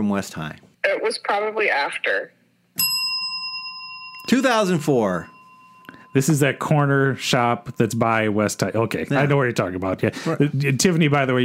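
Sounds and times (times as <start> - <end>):
speech: 0.0 - 2.4, 4.2 - 5.4, 6.1 - 11.4
bell ringing: 2.8 - 8.5.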